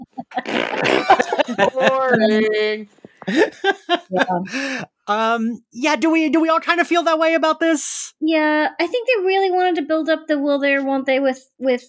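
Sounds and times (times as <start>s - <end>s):
laughter: 0.0s - 4.8s
person blowing a loud buzzy raspberry with their lips: 0.3s - 1.5s
speech: 0.4s - 11.8s.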